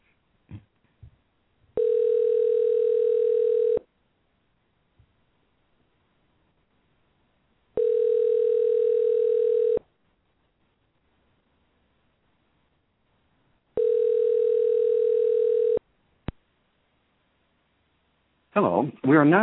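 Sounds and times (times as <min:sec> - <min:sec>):
phone line ringback tone during a call placed on live radio: 0:01.8 - 0:03.8, 0:07.8 - 0:09.8, 0:13.8 - 0:15.8
speech: 0:18.6 - 0:19.4.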